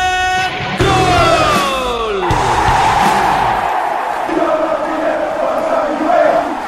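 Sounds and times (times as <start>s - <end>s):
brief electric guitar riff with sliding notes: 0.0s - 2.5s
loud sustained crowd roar and yelling: 0.4s - 6.6s.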